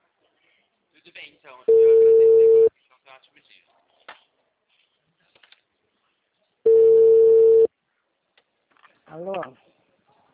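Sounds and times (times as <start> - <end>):
speech: 1.0 - 2.3, 3.1 - 4.0, 9.1 - 9.6
telephone tone beep after a dropped call: 1.7 - 2.7, 6.7 - 7.7.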